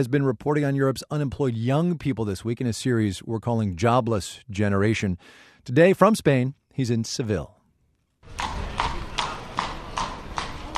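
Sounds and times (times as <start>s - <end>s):
speech: 0.0s - 7.6s
horse hooves clip-clopping on hard pavement: 8.2s - 10.7s.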